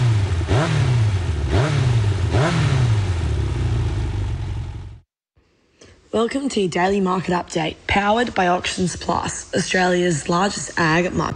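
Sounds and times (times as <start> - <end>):
Yamaha motorcycle engine revving: 0.0 - 5.1
speech: 6.2 - 11.3.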